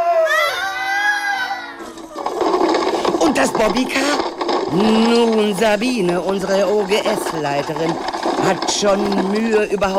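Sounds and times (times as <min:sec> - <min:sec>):
noisy jumble of shouting voices: 0:00.0 - 0:01.9
crowd screaming in fright: 0:00.0 - 0:02.0
speech: 0:03.2 - 0:09.9.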